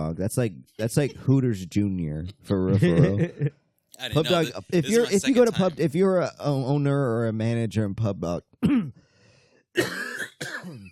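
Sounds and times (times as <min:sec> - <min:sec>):
speech: 0:00.2 - 0:09.0, 0:09.8 - 0:10.8
laughter: 0:02.8 - 0:05.8
person coughing from something caught in the throat: 0:08.6 - 0:08.9, 0:09.8 - 0:10.9.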